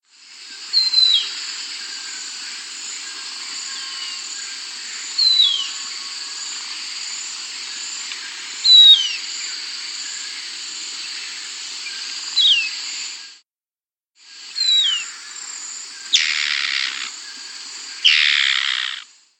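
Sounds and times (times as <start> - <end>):
White-Plumed Antbird calling in South America: 3.0 - 6.8, 8.2 - 9.3, 11.1 - 12.8, 14.5 - 15.4, 16.0 - 19.1.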